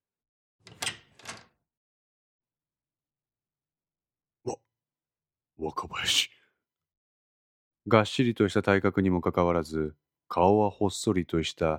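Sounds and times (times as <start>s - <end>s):
room door latch click: 0.7s - 1.6s
speech: 5.6s - 6.4s, 7.9s - 11.7s.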